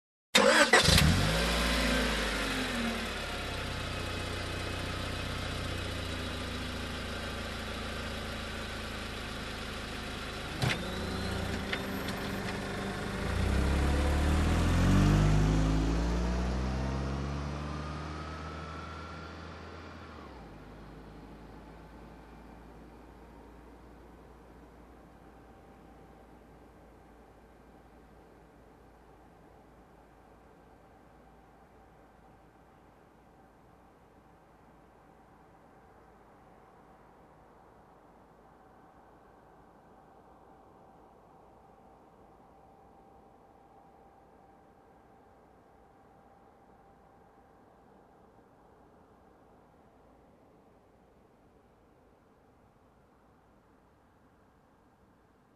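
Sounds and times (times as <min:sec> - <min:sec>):
car engine ignition: 0:00.4 - 0:26.3.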